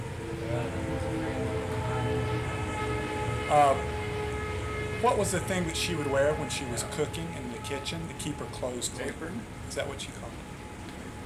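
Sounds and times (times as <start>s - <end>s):
train rumbling past: 0.0s - 11.2s
speech: 3.5s - 3.9s, 5.0s - 10.5s.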